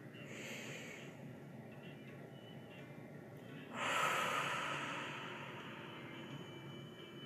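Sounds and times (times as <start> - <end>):
slow deep breathing during a guided relaxation exercise: 0.2 - 1.3, 3.7 - 6.7.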